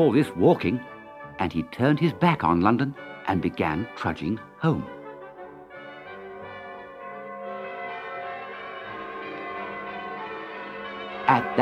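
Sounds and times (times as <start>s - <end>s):
speech: 0.0s - 5.0s, 11.3s - 11.6s
church bells ringing: 0.0s - 11.6s.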